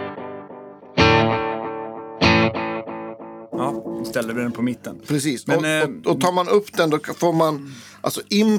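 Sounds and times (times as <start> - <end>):
electric guitar strummed through an effects pedal with wobbly modulation: 0.0 - 4.4
speech: 3.6 - 8.5.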